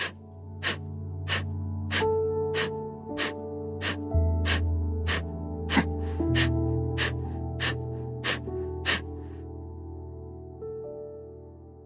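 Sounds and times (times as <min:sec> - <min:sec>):
forceful breathing exercise with short sharp breath bursts: 0:00.0 - 0:09.4
soft sustained music: 0:00.0 - 0:11.8.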